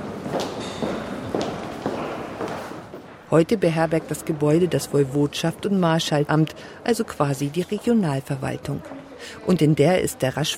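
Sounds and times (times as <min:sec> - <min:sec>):
footsteps along a wide second-floor corridor in a former parliament building: 0:00.0 - 0:06.0
speech: 0:03.3 - 0:10.5.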